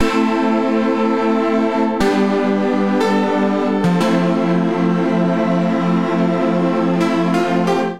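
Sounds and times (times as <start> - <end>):
keyboard accompaniment in A minor: 0.0 - 7.9.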